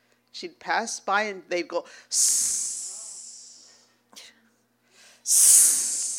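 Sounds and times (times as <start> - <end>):
speech: 0.4 - 2.8, 5.3 - 5.7
voice imitating men's hissing catcalls: 2.1 - 3.8, 5.3 - 6.1.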